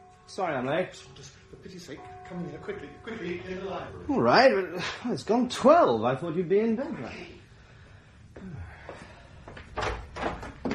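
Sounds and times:
faint room hum: 0.0 - 10.7
speech: 0.3 - 7.4
door creaking and thumping: 9.7 - 10.7.

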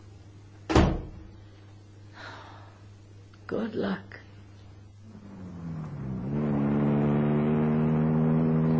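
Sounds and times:
speech: 3.5 - 4.2
car engine accelerating at high speed: 5.0 - 8.7.

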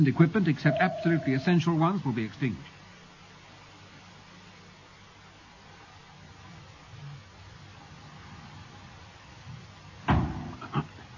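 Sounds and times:
speech: 0.0 - 2.8
object striking a spaceship hull with a heavy thud: 10.1 - 10.6.

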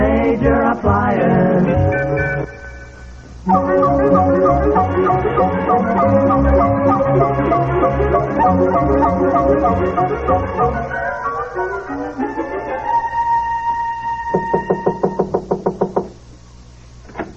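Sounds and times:
music: 0.0 - 16.0
sharp knocks on a door: 14.3 - 16.2.

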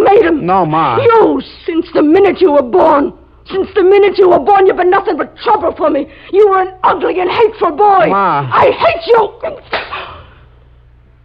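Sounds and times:
speech: 0.4 - 10.2
slap of skin on skin across the face: 9.6 - 10.0.

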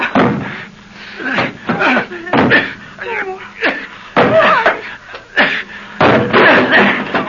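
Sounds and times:
person grunting and calling out: 1.2 - 4.8
metal kitchen stool banging against the front door of a house: 6.0 - 7.2.

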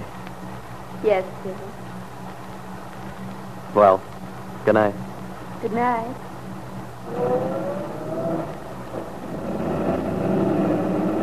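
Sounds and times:
speech: 1.0 - 2.0, 3.7 - 6.3, 7.1 - 7.7
truck engine revving as the truck pulls away: 7.0 - 11.2.

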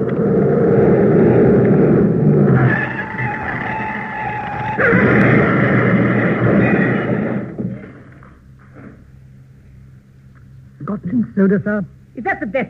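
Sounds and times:
large car engine roaring: 0.0 - 8.3
car tires squealing in a long high skid: 2.3 - 7.8
speech: 11.4 - 12.6.

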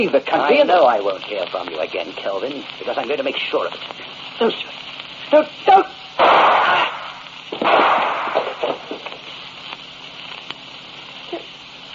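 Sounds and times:
speech: 0.0 - 6.3
faint pops and crackles: 0.0 - 11.9
gunshot from a gun fired in a killing: 6.2 - 9.0.

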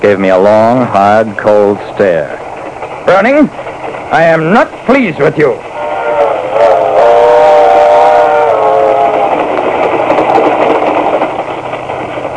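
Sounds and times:
speech: 0.0 - 2.4, 3.1 - 5.7
moving train engine rumbling and clattering: 0.0 - 12.3
sustained multi-tone train whistle blowing: 5.7 - 9.4.

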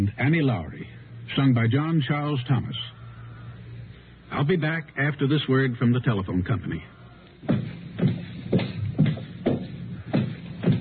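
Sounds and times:
speech: 0.1 - 3.0, 4.3 - 7.6
heavy shoe footsteps on a hard floor: 7.4 - 10.7.

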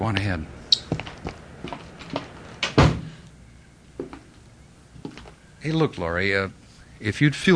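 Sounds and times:
speech: 0.0 - 1.1, 5.6 - 7.5
heavy street door thudding open: 2.6 - 3.2.

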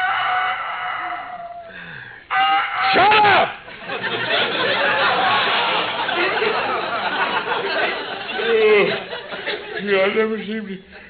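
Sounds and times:
rooster crowing: 0.0 - 3.0
laughter: 3.2 - 11.0
speech: 9.8 - 11.0.

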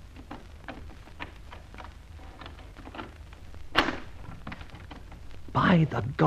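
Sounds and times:
faint rustling: 0.0 - 5.6
door opening clunk: 3.8 - 5.2
speech: 5.6 - 6.2.

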